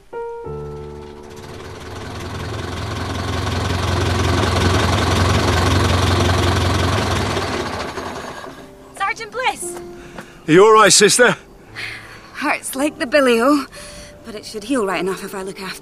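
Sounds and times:
tractor engine running in a field: 0.4s - 8.7s
speech: 10.5s - 15.8s.

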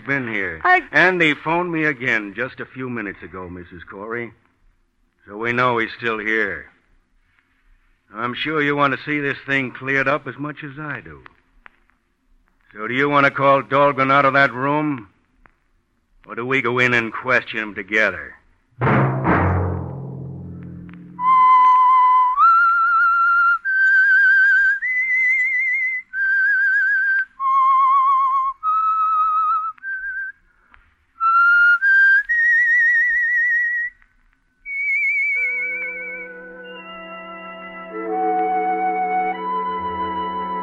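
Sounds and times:
speech: 0.0s - 4.4s, 5.3s - 6.7s, 8.1s - 11.4s, 12.7s - 15.1s, 16.2s - 19.1s
whistled signature tune of a radio program: 21.1s - 30.4s, 31.2s - 40.6s.

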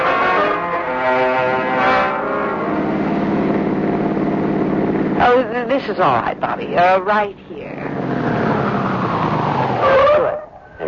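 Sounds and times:
road noise of a moving car: 0.0s - 10.8s
car engine rumble while driving: 2.2s - 10.8s
speech: 5.8s - 7.8s.

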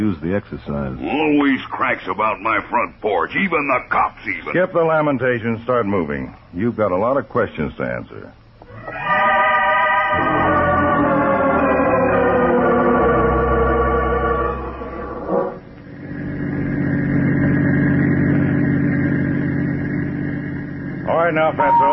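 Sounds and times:
speech: 0.0s - 9.0s, 21.3s - 21.9s
car engine driving: 10.1s - 21.9s.

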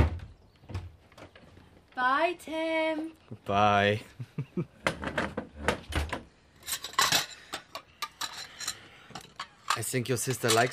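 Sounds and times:
speech: 2.0s - 5.2s, 9.9s - 10.7s
breakfast dishes and cutlery clattering while being cleared up: 6.6s - 10.7s.

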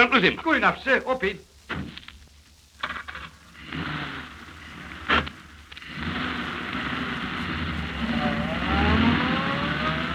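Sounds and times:
speech: 0.1s - 1.8s
taxi engine accelerating as it pulls away in pursuit: 6.4s - 10.1s.

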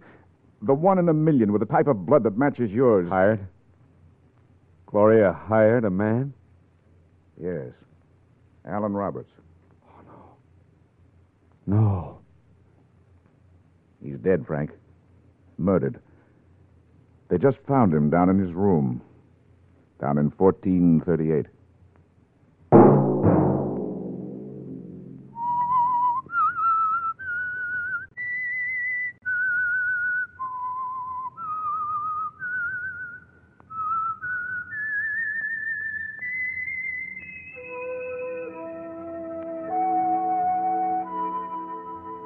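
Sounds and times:
speech: 0.6s - 3.6s, 4.9s - 6.4s, 7.4s - 7.8s, 8.6s - 9.4s, 11.7s - 12.2s, 14.0s - 14.8s, 15.6s - 16.1s, 17.3s - 19.1s, 20.0s - 21.6s
fuller musical accompaniment: 22.8s - 26.0s, 36.8s - 42.2s
single person whistling a theme tune: 25.3s - 42.2s.

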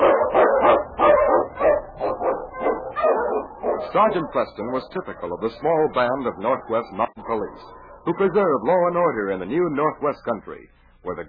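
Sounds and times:
husky sled dog barking: 0.0s - 8.4s
speech: 3.9s - 11.2s.

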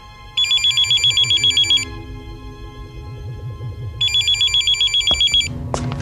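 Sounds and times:
low rumbling background: 0.0s - 6.0s
telephone ringing with a warbling electronic trill: 0.4s - 1.9s, 4.0s - 5.5s.

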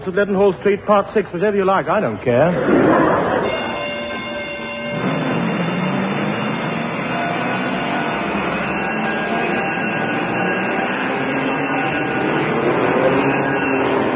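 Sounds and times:
speech: 0.0s - 3.2s
faint tonal whines of a train: 2.6s - 14.1s
train rumbling: 3.2s - 14.1s.

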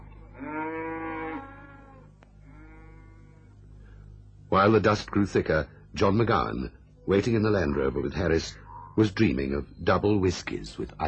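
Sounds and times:
cattle mooing: 0.3s - 3.5s
speech: 4.5s - 11.0s.

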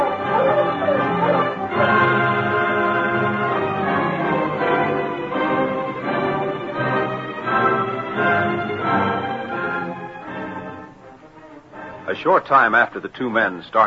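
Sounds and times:
pack of husky sled dogs barking and yipping: 0.0s - 9.8s
speech: 12.2s - 13.8s.

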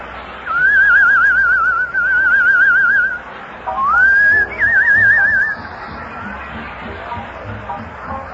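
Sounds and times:
person whistling a short warbling tune with trills: 0.5s - 3.2s, 3.8s - 5.7s.

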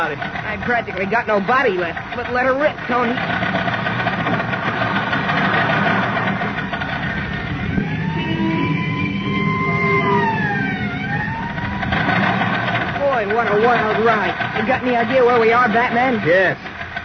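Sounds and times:
speech: 0.0s - 3.6s, 13.4s - 16.7s
steady engine rumble: 0.0s - 17.0s
ambulance siren wailing past: 6.4s - 15.7s.

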